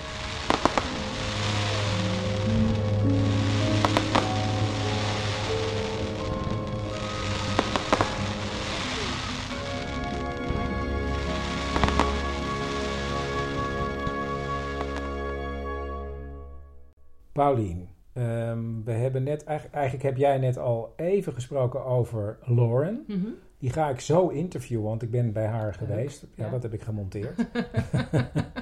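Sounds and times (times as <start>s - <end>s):
fireworks display crackling and booming: 0.0s - 15.2s
speech: 17.4s - 28.6s
laughter: 25.8s - 28.6s.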